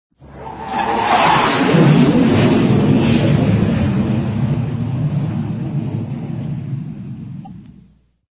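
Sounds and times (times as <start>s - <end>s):
jet aircraft flying by: 0.2s - 8.1s.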